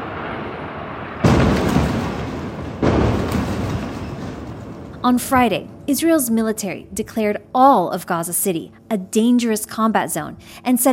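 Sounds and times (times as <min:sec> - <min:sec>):
heavy explosions in Gaza City: 0:00.0 - 0:05.9
speech: 0:05.0 - 0:10.9.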